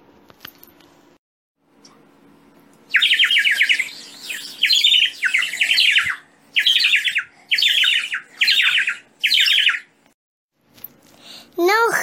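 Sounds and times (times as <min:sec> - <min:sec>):
pigeons squawking: 0:02.9 - 0:09.9.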